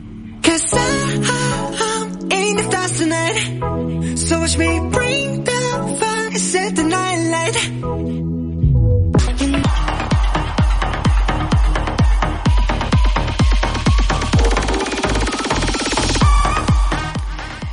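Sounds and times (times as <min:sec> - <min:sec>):
upbeat pop song playing on the radio: 0:00.3 - 0:08.2, 0:09.2 - 0:17.7.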